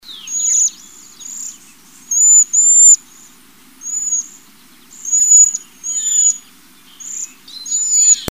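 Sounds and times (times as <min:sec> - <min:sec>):
cedar waxwing: 0:00.0 - 0:08.2.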